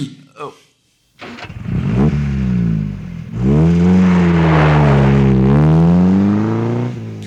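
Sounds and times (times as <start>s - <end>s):
convoy of Porsche cars speeding off at night, engines revving: 1.2s - 7.2s.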